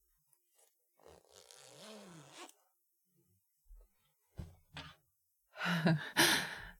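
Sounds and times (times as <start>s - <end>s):
dress zipper being pulled open: 0.6s - 2.6s
long breathy sigh: 5.6s - 6.7s.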